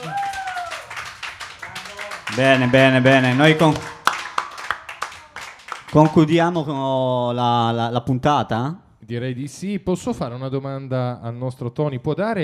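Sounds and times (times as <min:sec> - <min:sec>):
audience hands clapping: 0:00.0 - 0:06.4
speech: 0:02.3 - 0:03.9, 0:05.9 - 0:12.4.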